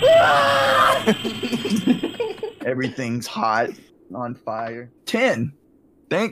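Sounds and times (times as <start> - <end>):
person screaming: 0.0 - 1.2
laughter: 1.0 - 3.7
speech: 1.1 - 2.1, 2.7 - 6.3.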